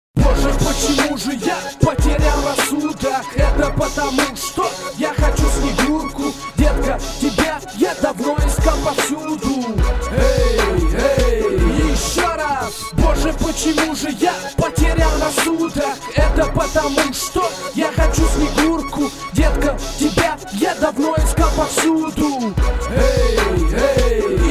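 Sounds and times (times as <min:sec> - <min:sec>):
micro street beat: 0:00.2 - 0:24.4.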